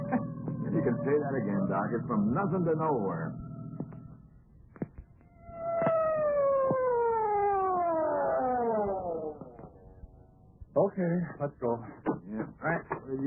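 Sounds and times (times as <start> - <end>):
laughter: 0.0 - 1.7
siren wailing: 0.0 - 4.4, 5.2 - 10.6
speech: 0.8 - 3.4, 10.8 - 13.2.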